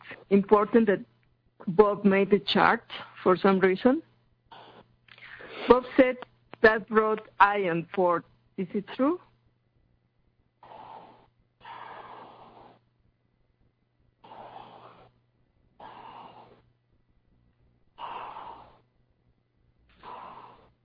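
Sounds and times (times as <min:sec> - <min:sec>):
faint low hum: 0:00.0 - 0:20.8
speech: 0:00.3 - 0:04.1, 0:05.6 - 0:09.3
heavy rasping breathing: 0:04.5 - 0:05.8, 0:10.6 - 0:12.8, 0:14.2 - 0:15.2, 0:15.8 - 0:16.7, 0:18.0 - 0:18.8, 0:19.9 - 0:20.8.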